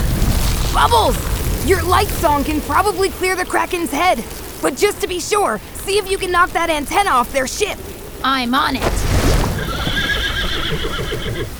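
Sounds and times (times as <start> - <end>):
speech: 0.8 - 9.4
flying water horse whinnying: 9.4 - 11.5.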